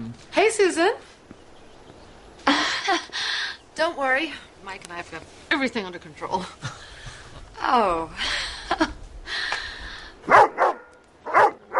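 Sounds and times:
noise: 0.0 - 11.7
speech: 0.2 - 1.2, 3.8 - 6.8, 7.6 - 8.9
dog barking: 10.3 - 11.7.

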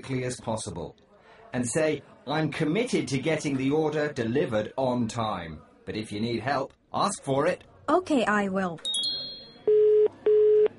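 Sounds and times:
speech: 0.0 - 8.9
telephone ringback tone purring on the line: 8.9 - 10.7.

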